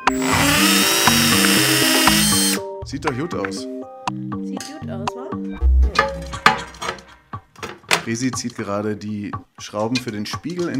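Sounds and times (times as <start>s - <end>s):
hammer drill boring a hole into tiles: 0.1s - 2.7s
speech: 2.9s - 5.4s, 8.1s - 10.7s.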